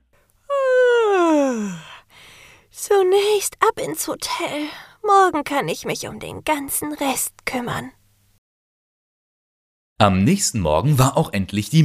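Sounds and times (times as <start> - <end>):
loud drawn-out moan-like yawn: 0.5 - 2.5
speech: 2.8 - 8.0, 10.0 - 11.8.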